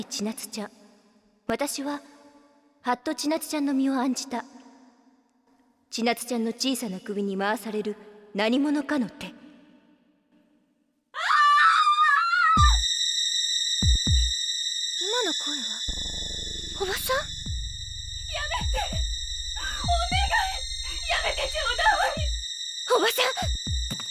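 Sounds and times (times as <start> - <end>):
speech: 0.0 - 0.8, 1.5 - 2.2, 2.8 - 4.5, 5.9 - 9.4
woman's shaky wavering scream from downstairs: 11.2 - 12.8, 18.3 - 19.0, 19.6 - 22.4
sustained eerie tones: 12.6 - 24.0
low buzzing drone: 15.8 - 22.5.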